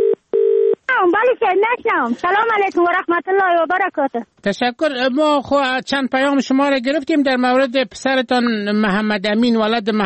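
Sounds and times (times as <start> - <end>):
telephone dialing tones: 0.0 - 0.8
speech: 1.4 - 10.0.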